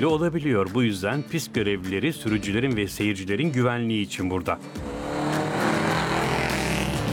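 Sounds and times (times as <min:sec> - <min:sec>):
speech: 0:00.0 - 0:05.0
vintage Austin 7 racing car engine roar at Prescott hill climb: 0:04.5 - 0:07.1.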